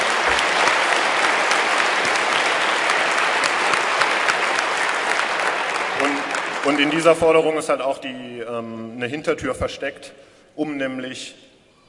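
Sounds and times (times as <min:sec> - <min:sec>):
audience applause: 0:00.0 - 0:07.6
speech: 0:06.7 - 0:11.4.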